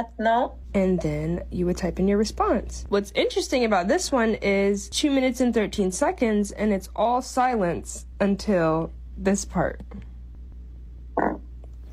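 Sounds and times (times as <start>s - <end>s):
speech: 0.0s - 10.1s
short buzzy fart sound in a student's recorded answer: 11.1s - 11.9s.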